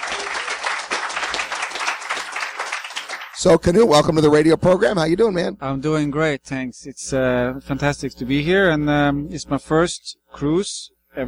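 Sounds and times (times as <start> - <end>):
crowd at a conference aboard a cruise ship applauding: 0.0 - 3.6
speech: 3.4 - 11.2.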